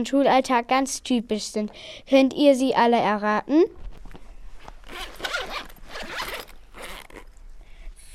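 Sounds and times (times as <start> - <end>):
speech: 0.0 - 3.8
pencil case zipper pulled open: 4.6 - 7.5.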